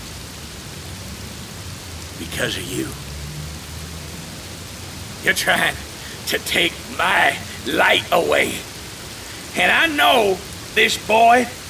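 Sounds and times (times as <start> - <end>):
heavy rain pouring: 0.0 - 11.6
speech: 2.2 - 3.1, 5.2 - 8.7, 9.6 - 11.6.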